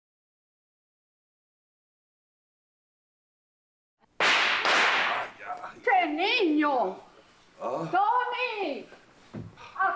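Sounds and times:
firecrackers crackling and hissing, theatre sound effect: 4.2 - 5.6
speech: 5.8 - 9.9.

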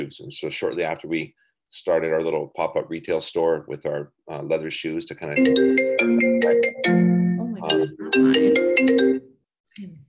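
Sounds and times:
speech: 0.0 - 10.0
phone notification ringtone jingle: 5.4 - 9.2.

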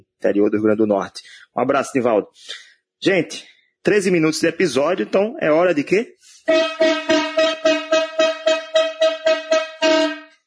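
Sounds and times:
speech: 0.2 - 7.5
loud brassy horn honking in short blasts: 6.4 - 10.4.

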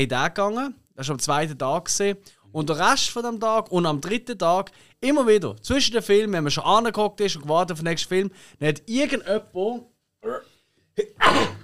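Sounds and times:
speech: 0.0 - 11.6
person sneezing: 11.0 - 11.6.

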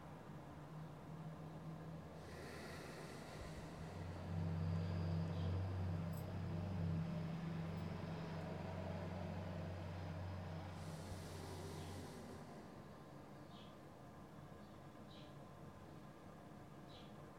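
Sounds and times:
low rumble of passing road traffic: 1.0 - 13.7.

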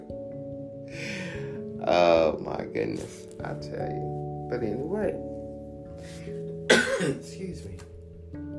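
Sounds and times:
breathy sounds: 0.8 - 1.8
speech: 1.8 - 5.3, 7.0 - 8.4
person coughing: 6.7 - 7.3.

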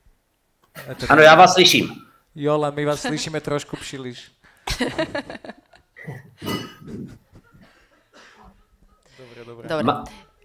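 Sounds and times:
speech: 0.8 - 7.2, 9.4 - 10.3
laughter: 4.6 - 9.2
dishes clattering and clinking: 6.4 - 7.2.

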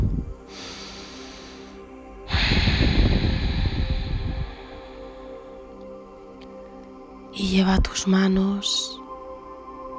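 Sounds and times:
deep breath in and out: 0.0 - 6.4
speech: 7.4 - 9.0.

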